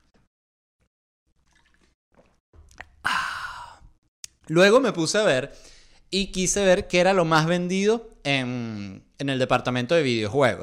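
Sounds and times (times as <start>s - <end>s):
soft gulps of water: 1.3s - 4.0s
loud breathy exhale of relief: 3.1s - 3.9s, 5.5s - 6.0s
speech: 4.5s - 10.6s.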